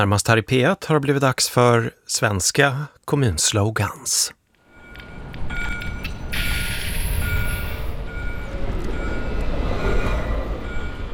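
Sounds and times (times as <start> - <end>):
speech: 0.0 - 4.4
tram rumbling along its rails: 4.7 - 11.1.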